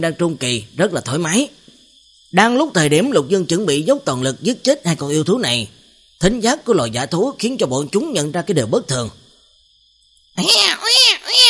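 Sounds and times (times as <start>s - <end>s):
speech: 0.0s - 1.6s, 2.3s - 9.2s, 10.4s - 11.4s
newborn baby crying in a forest: 10.4s - 11.4s.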